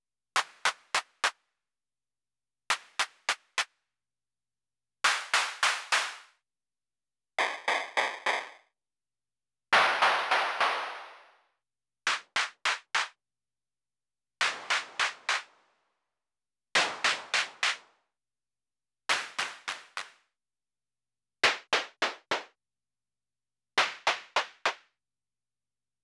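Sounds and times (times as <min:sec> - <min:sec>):
clap: 0:00.4 - 0:01.5, 0:02.7 - 0:03.8, 0:05.0 - 0:06.4, 0:07.4 - 0:08.7, 0:09.8 - 0:11.5, 0:12.1 - 0:13.2, 0:14.4 - 0:15.6, 0:16.8 - 0:18.0, 0:19.1 - 0:20.3, 0:21.4 - 0:22.6, 0:23.8 - 0:25.0.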